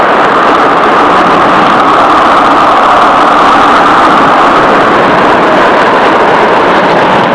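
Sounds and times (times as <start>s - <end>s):
storm: 0.0s - 7.3s.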